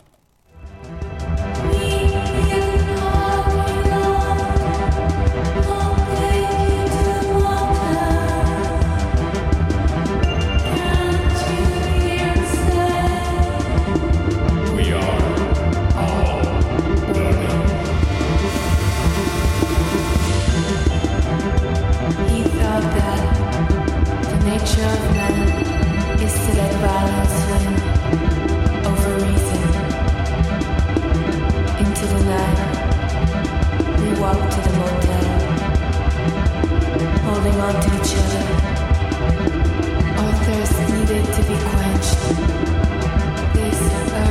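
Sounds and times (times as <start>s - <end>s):
electronic track with pulsing synth beat and deep bass: 0.0s - 44.2s.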